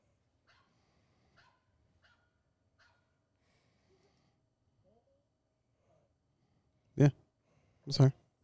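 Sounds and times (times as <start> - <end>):
puppy giving a sudden loud bark: 1.4 - 3.1
speech: 7.0 - 7.2, 7.9 - 8.2.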